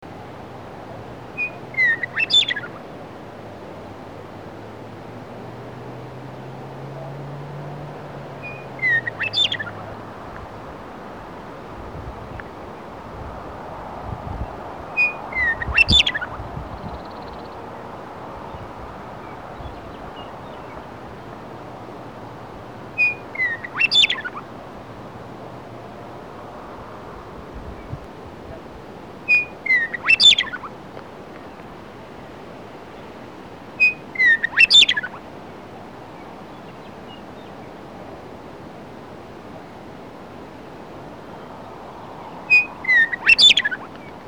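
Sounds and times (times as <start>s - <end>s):
Western Meadowlark: 1.4s - 2.8s, 8.4s - 9.9s, 14.3s - 21.0s, 23.0s - 24.4s, 29.3s - 30.7s, 33.8s - 35.2s, 41.4s - 44.2s.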